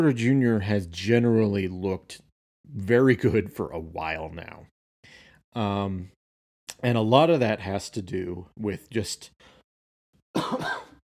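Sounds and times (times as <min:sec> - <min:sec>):
speech: 0:00.0 - 0:04.7, 0:05.5 - 0:06.2, 0:06.8 - 0:09.6, 0:10.3 - 0:10.8
person coughing: 0:10.4 - 0:11.0.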